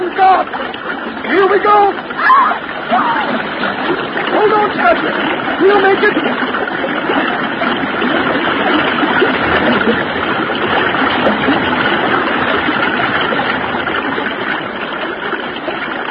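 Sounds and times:
churning splashing water in a river: 0.0s - 16.0s
loud steady rushing river current: 0.0s - 16.0s
speech: 0.3s - 7.8s, 9.8s - 10.3s.

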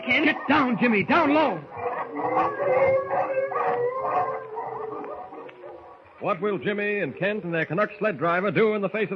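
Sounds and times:
chorus of wolves howling: 0.0s - 6.1s
speech: 0.1s - 4.4s, 6.2s - 9.1s.

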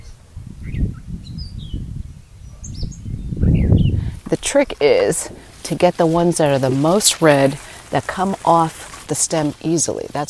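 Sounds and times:
bird chirps and tweets in a cherry orchard: 0.0s - 4.2s
low rumble of breeze in a cherry orchard: 0.0s - 10.2s
speech: 4.3s - 10.2s.

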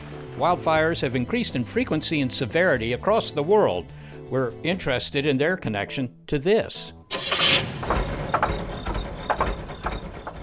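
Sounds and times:
speech: 0.4s - 7.0s
car engine starting and idling: 7.1s - 10.4s
ticks and rattles: 7.2s - 10.4s.

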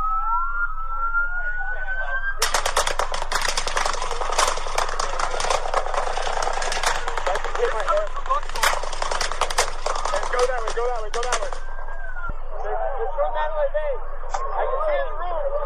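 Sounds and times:
faint voices: 0.1s - 15.6s
rapid bursts of gunfire: 2.4s - 11.7s.

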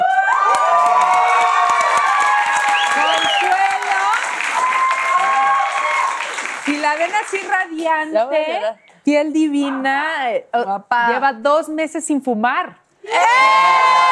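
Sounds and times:
studio audience whoops and cheering: 0.0s - 6.7s, 13.0s - 14.0s
studio audience applause: 0.0s - 7.7s
speech: 6.9s - 14.0s.

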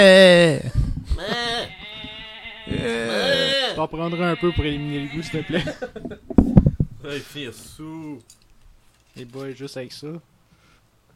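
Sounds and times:
speech: 0.0s - 1.8s, 3.8s - 8.4s, 9.2s - 10.3s
goat bleating: 1.2s - 5.8s
laughter: 5.1s - 6.3s.

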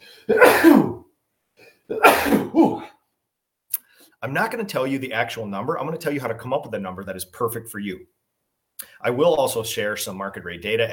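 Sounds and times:
breath: 0.0s - 0.3s, 3.8s - 4.2s
person sneezing: 0.0s - 1.1s, 1.9s - 3.0s
speech: 4.2s - 8.2s, 9.0s - 10.9s.

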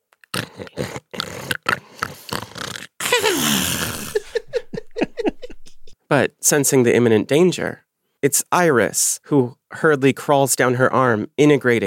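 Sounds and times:
voice imitating snoring with snorts and wheezing: 0.3s - 4.4s
laughter: 4.0s - 6.0s
speech: 6.1s - 11.8s.

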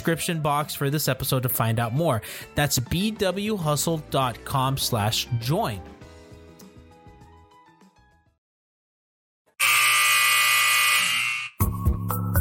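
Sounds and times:
speech: 0.0s - 6.0s
basketball game final buzzer: 9.6s - 11.7s.

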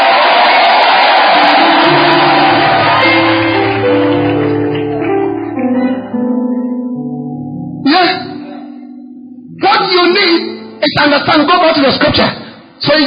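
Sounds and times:
large audience shouting and cheering: 0.0s - 5.1s
sustained organ-like chords: 1.2s - 11.2s
speech: 11.0s - 13.0s.

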